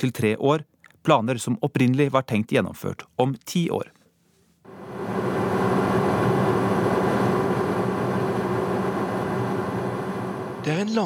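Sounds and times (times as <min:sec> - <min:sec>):
speech: 0:00.0 - 0:04.0, 0:10.6 - 0:11.0
helicopter droning in flight: 0:04.7 - 0:10.9.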